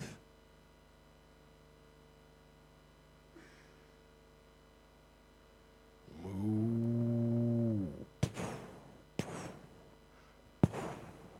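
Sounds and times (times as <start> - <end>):
cow mooing: 6.1 - 8.1.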